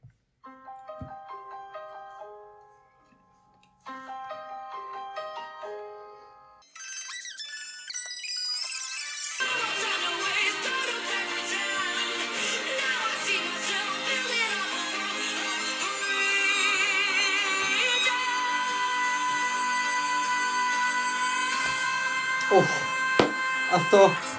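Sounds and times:
pop song with bell-like synth notes and vocals: 9.2s - 24.3s
speech: 22.6s - 22.8s, 23.7s - 24.3s.

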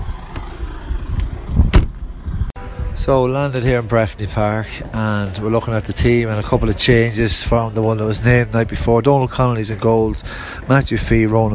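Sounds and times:
car engine rumble while rolling into a parking area: 0.0s - 11.5s
clunks and rattles: 0.3s - 2.5s
speech: 3.1s - 11.5s.

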